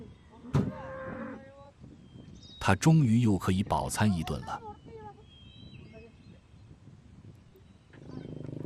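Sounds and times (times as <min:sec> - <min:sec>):
cow mooing as it rejoins a cattle herd: 0:00.7 - 0:01.5
speech: 0:02.7 - 0:04.7.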